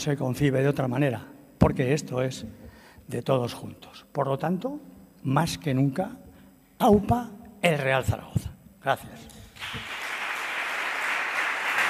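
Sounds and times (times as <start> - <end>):
speech: 0.0 - 6.2, 6.8 - 10.0
audience applause at a public event: 9.6 - 11.8.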